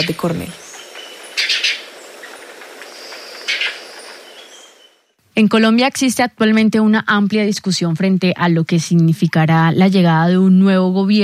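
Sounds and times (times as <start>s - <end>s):
speech: 0.0s - 0.6s, 5.4s - 11.2s
guayabero ocre bird trills: 0.0s - 5.1s
steady low hiss in an outdoor recording: 0.0s - 11.2s.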